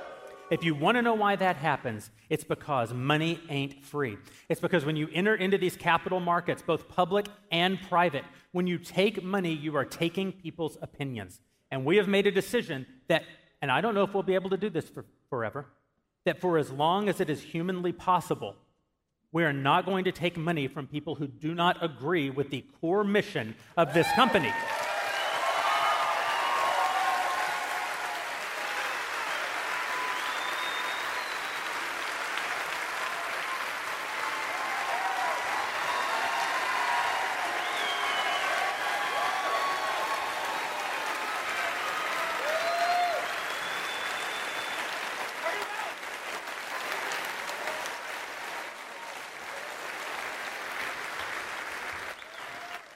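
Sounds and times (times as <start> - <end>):
scattered cheers and whoops from an audience: 0.0 - 0.7, 23.8 - 32.1, 32.9 - 46.0, 46.6 - 50.2, 52.2 - 52.9
applause from a sizable audience: 0.0 - 0.8, 23.9 - 52.9
speech: 0.5 - 18.6, 19.3 - 24.9.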